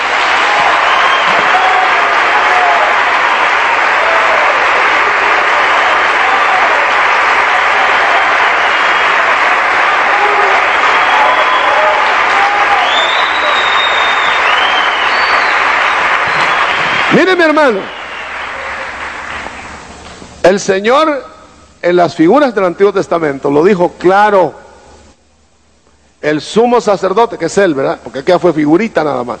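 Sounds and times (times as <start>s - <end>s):
cheering voices at a church service: 0.0s - 19.7s
congregation applauding at a church service: 0.0s - 20.0s
whistles at a church service: 0.8s - 1.5s, 10.8s - 12.0s, 12.7s - 17.1s, 17.8s - 18.6s
speech: 17.2s - 18.0s, 20.5s - 24.6s, 26.2s - 29.3s.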